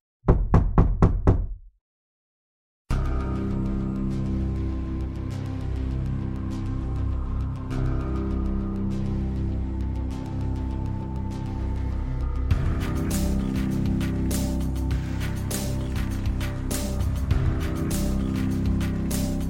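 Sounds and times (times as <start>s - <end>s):
loud heavy knocks pounding on a door: 0.3s - 1.6s
dense sustained musical sound: 3.0s - 19.4s.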